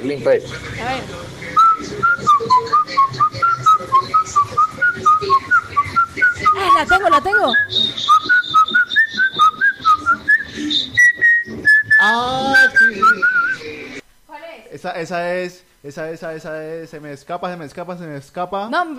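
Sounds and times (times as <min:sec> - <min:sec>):
speech: 0:00.0 - 0:02.8, 0:06.7 - 0:08.3, 0:12.0 - 0:12.6, 0:14.8 - 0:18.9
person whistling a song melody: 0:01.6 - 0:13.7.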